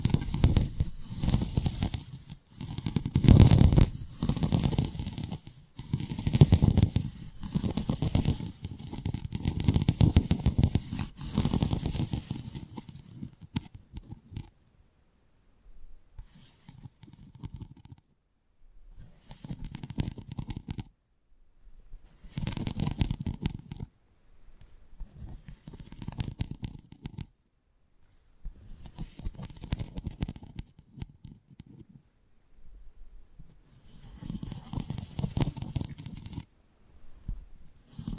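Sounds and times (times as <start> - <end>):
ear picking and rubbing with various props: 0.0 - 14.6, 16.2 - 18.1, 18.9 - 20.9, 22.0 - 23.9, 24.6 - 27.3, 28.0 - 32.0, 33.4 - 36.5, 37.2 - 38.1.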